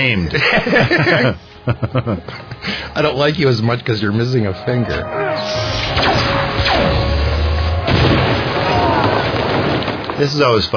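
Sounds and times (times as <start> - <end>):
speech: 0.0 - 7.1, 10.2 - 10.7
laughter: 0.3 - 2.9
air cannon blasts: 5.5 - 10.1.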